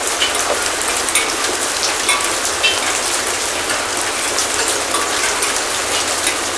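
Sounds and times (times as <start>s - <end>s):
rain on metal: 0.0s - 6.5s.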